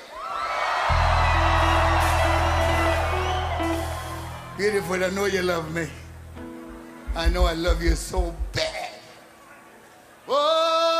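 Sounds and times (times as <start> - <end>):
large concert audience of young people screaming and whooping: 0.0 - 5.4
speech: 4.6 - 6.0, 7.2 - 8.6.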